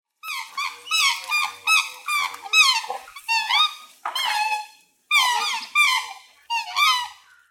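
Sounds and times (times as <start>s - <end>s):
black swan Cygnus atratus calling: 0.2s - 7.4s.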